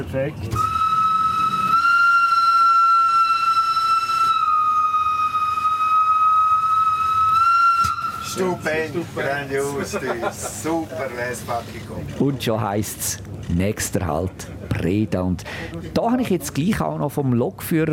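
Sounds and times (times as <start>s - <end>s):
speech: 0.0s - 0.8s, 8.4s - 17.9s
train whistle blowing while exiting a tunnel: 0.6s - 8.8s
laughter: 9.0s - 11.3s.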